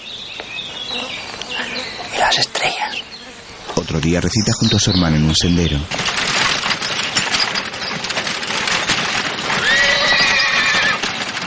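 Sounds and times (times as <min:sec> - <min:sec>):
speech: 0:02.3 - 0:03.1, 0:03.9 - 0:06.4
horse hooves clopping on a path: 0:05.2 - 0:11.4
horse-drawn carriage loaded with suitcases rattling along a path: 0:05.9 - 0:11.4
horse whinnying loudly: 0:09.4 - 0:11.1.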